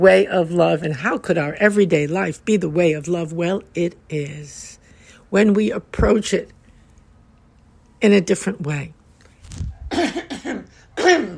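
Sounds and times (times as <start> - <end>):
speech: 0.0 - 6.6, 8.0 - 9.0, 9.6 - 11.3
small throaty coughs: 9.9 - 11.3.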